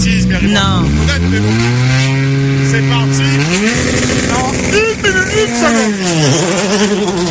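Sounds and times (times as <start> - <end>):
Porsche 996 rally car engine roaring and revving: 0.0 - 7.3
speech: 0.3 - 2.0, 2.7 - 4.0.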